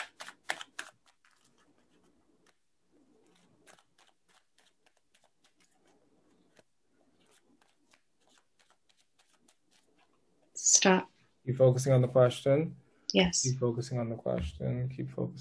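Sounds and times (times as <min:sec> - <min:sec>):
tarot cards riffling: 0:00.0 - 0:10.1
speech: 0:10.8 - 0:15.4.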